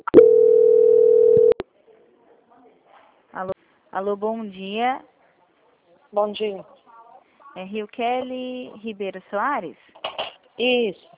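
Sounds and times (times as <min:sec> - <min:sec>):
telephone transfer tone during a call: 0:00.0 - 0:01.6
speech: 0:03.4 - 0:05.1, 0:06.1 - 0:06.7, 0:07.6 - 0:10.0, 0:10.6 - 0:11.1.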